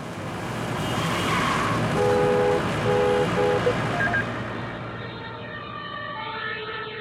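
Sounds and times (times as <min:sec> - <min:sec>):
road traffic rumble: 0:00.0 - 0:07.0
emergency siren wailing: 0:03.6 - 0:07.0.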